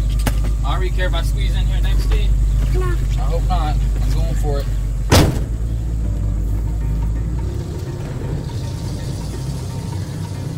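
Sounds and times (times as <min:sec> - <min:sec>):
antique truck engine rumbling on Highway 68: 0:00.0 - 0:10.5
road noise hissing: 0:00.0 - 0:10.5
speech: 0:00.8 - 0:04.8.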